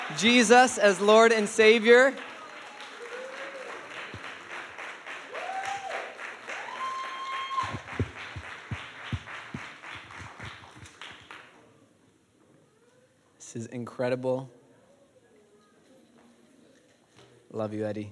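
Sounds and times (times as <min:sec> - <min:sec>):
crowd applauding people being baptized: 0:00.0 - 0:11.6
speech: 0:00.1 - 0:02.3, 0:14.0 - 0:14.6, 0:17.5 - 0:18.1
faint whoops and cheering voices: 0:02.8 - 0:04.0, 0:05.3 - 0:08.1.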